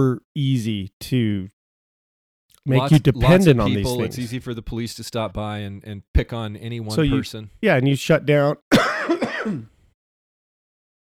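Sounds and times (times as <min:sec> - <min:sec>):
speech: 0:00.0 - 0:01.6, 0:02.6 - 0:09.8
throat clearing with a rough coughing edge: 0:08.8 - 0:09.8.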